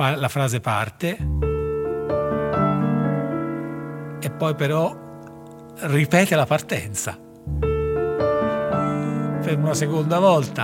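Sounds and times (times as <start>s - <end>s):
speech: 0.0s - 1.4s, 4.2s - 5.0s, 5.8s - 7.6s, 9.5s - 10.6s
piano playing slow phrase of a rhapsody: 1.2s - 10.6s.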